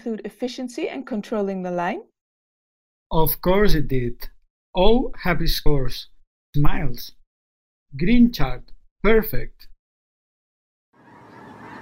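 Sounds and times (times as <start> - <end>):
speech: 0.0 - 2.1, 3.1 - 7.2, 7.9 - 9.7
dense noisy chorus of many birds calling: 11.0 - 11.7.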